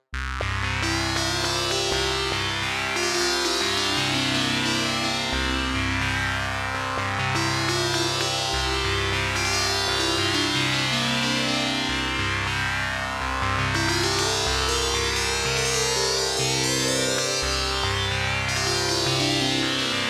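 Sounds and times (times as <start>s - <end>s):
synthesizer sitar sound: 0.4s - 20.0s.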